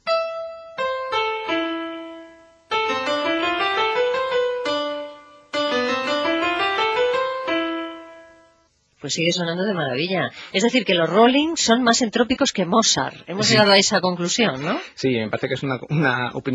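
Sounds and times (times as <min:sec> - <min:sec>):
opera melody with pitch inverted upside down: 0:00.0 - 0:08.6
speech: 0:09.1 - 0:16.5.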